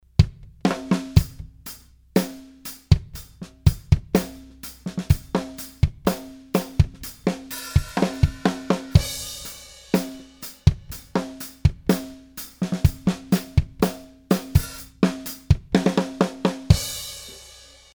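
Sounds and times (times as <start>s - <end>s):
whole drum kit aligned from kick: 0.0s - 17.9s.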